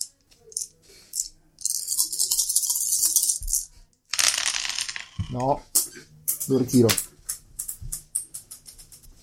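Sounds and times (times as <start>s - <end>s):
dice rolling and falling on a table: 1.8s - 5.6s
speech: 5.3s - 5.7s, 6.5s - 7.1s.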